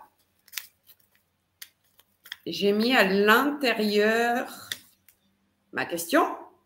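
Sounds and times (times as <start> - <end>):
folded sheet of paper being opened: 0.1 - 2.5
speech: 2.5 - 4.7, 5.7 - 6.4.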